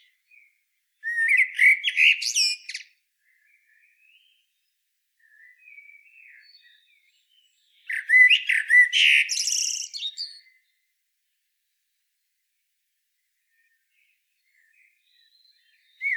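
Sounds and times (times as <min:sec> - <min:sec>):
common blackbird Turdus merula singing: 0:00.0 - 0:10.7, 0:13.5 - 0:16.1.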